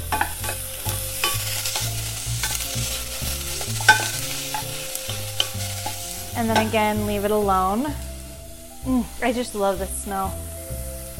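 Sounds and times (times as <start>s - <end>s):
scraping stir strokes in a pan: 0.0s - 7.1s
sharp crackles: 0.0s - 10.4s
onions frying in a pan: 0.0s - 11.1s
speech: 6.4s - 8.1s, 8.8s - 10.5s.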